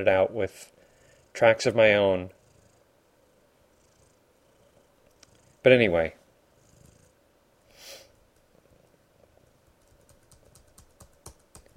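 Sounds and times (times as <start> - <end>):
speech: 0.0 - 0.8, 1.4 - 2.4, 5.6 - 6.2
computer keyboard clicking: 9.7 - 11.7.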